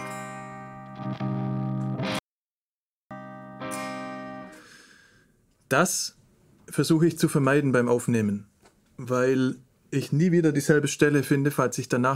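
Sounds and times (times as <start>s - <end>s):
distorted electric guitar playing sustained chords with changing gain: 0.0s - 2.2s, 3.1s - 4.8s
speech: 5.7s - 12.1s.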